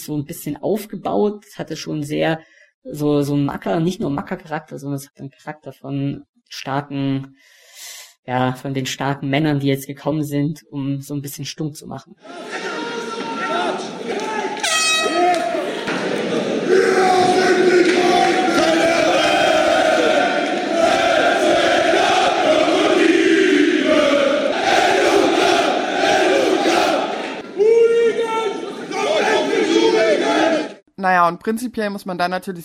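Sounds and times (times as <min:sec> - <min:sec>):
speech: 0:00.0 - 0:07.6, 0:08.2 - 0:12.7, 0:31.0 - 0:32.6
large crowd roaring and shouting at a combat sports event: 0:12.2 - 0:30.8
sharp air horn blasts: 0:14.6 - 0:15.7.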